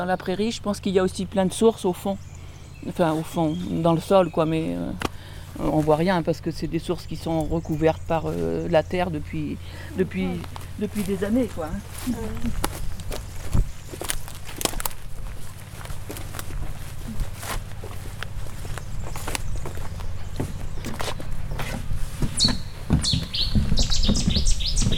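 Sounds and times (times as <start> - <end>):
speech: 0.0 - 13.2
low rumble: 0.0 - 23.0
birds chirping outdoors: 0.4 - 24.9
footsteps crunching along: 10.0 - 22.7.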